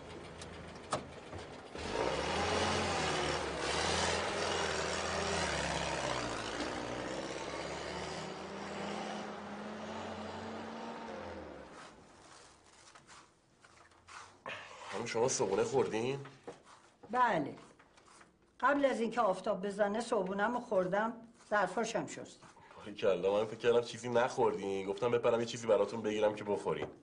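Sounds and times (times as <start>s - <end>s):
car engine running while driving: 0.0s - 12.2s
road noise: 0.0s - 12.8s
speech: 15.1s - 16.4s, 17.1s - 17.7s, 18.6s - 27.0s.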